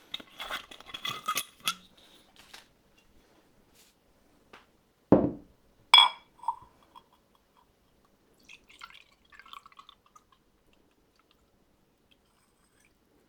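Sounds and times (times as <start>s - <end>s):
glassware clinking: 0.1s - 1.9s, 6.0s - 7.1s
awamori poured into a glass: 8.4s - 10.4s.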